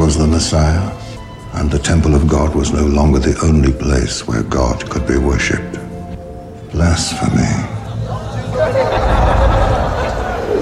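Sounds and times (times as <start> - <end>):
speech: 0.1 - 5.8, 6.7 - 7.8
laughter: 7.7 - 10.6
large crowd roaring: 8.5 - 10.6.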